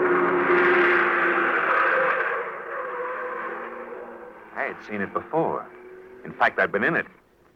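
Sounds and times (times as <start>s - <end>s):
heavy limousine roaring past on a road beside a jungle thicket: 0.0s - 7.2s
speech: 4.8s - 7.2s.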